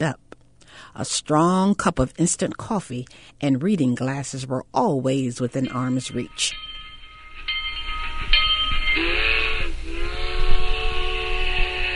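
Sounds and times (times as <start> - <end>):
speech: 0.0 - 0.2, 0.9 - 6.7
approaching train rumbling: 5.6 - 11.9
multi-tone train whistle blowing: 6.5 - 11.9.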